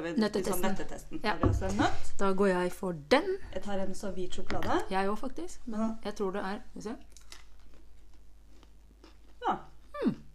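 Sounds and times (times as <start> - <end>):
speech: 0.0 - 7.1, 9.5 - 10.2
crunching bite of white chocolate with nuts: 7.0 - 10.3.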